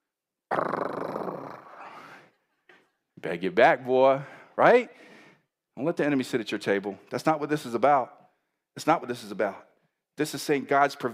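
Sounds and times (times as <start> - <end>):
person growling like a lion: 0.5 - 2.0
speech: 3.2 - 5.1, 5.8 - 8.2, 8.8 - 11.1.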